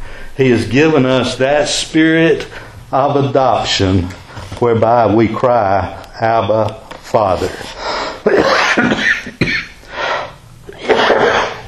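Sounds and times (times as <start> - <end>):
speech: 0.4 - 8.9
person coughing fit with harsh raspy coughs: 8.2 - 9.8, 10.7 - 11.6.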